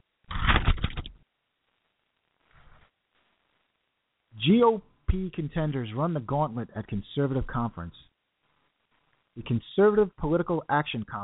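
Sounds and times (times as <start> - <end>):
sheet of paper being pulled out and handled: 0.3 - 1.1
speech: 4.4 - 8.1, 9.4 - 11.2.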